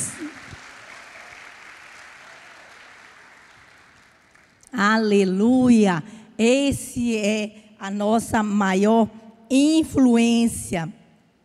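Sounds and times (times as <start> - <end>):
crowd applauding: 0.0 - 4.6
speech: 4.7 - 11.0.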